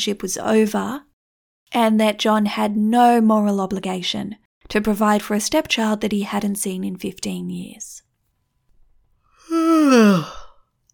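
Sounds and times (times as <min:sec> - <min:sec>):
speech: 0:00.0 - 0:01.1, 0:01.7 - 0:08.0, 0:09.5 - 0:10.4
person yawning: 0:09.4 - 0:10.5.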